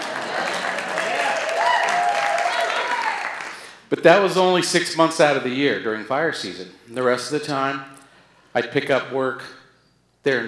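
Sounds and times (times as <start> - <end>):
crowd cheers: 0.0 - 3.6
audience applause: 0.0 - 3.7
speech: 4.0 - 9.6, 10.2 - 10.4.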